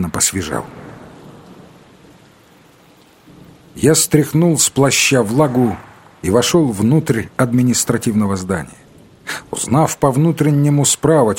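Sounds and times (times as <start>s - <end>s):
speech: 0.0s - 0.8s, 3.8s - 11.3s
storm rain falling on dusty city pavement: 0.0s - 11.3s
low rumble of a storm: 4.9s - 7.4s.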